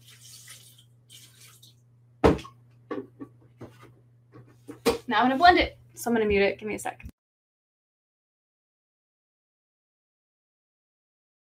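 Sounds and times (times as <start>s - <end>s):
water poured in to cover seasoned ingredients: 0.0s - 1.8s
speech: 5.1s - 7.1s.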